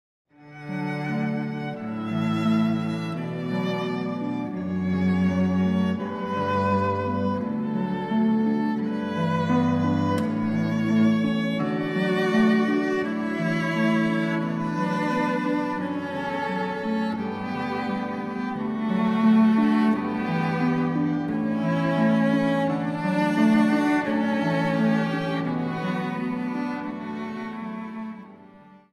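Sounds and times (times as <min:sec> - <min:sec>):
violin cello and harp trio playing a canon: 0:00.4 - 0:28.9.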